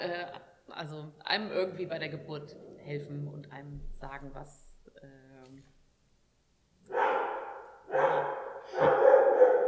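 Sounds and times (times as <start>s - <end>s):
speech: 0.0s - 5.7s
dog barking: 6.9s - 9.6s.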